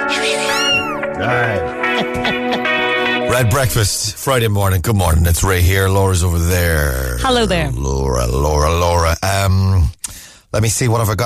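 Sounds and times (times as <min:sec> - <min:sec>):
cat meowing: 0:00.4 - 0:01.0
laughter: 0:01.2 - 0:02.8
speech: 0:03.4 - 0:11.2.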